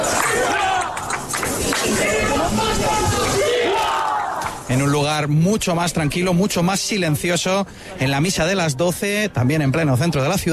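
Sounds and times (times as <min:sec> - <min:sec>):
dense crowd shouting and cheering in a city centre: 0:00.0 - 0:05.2
speech: 0:04.7 - 0:10.5.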